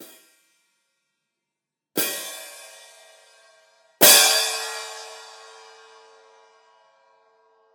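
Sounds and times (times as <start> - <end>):
Paiste PST3 14-inch cymbal: 2.0 - 6.5.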